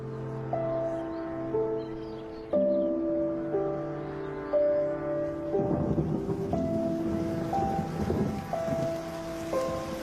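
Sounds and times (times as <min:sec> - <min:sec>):
steady rain: 0:00.0 - 0:10.0
deep rumble of thunder: 0:04.8 - 0:10.0.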